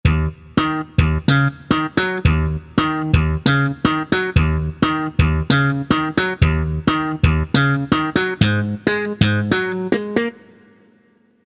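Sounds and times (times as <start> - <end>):
slap bass synth preset: 0.0 - 9.6.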